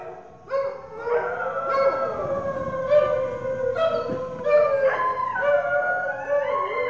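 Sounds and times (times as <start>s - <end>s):
stray dogs howling on the streets in India: 0.0s - 6.8s.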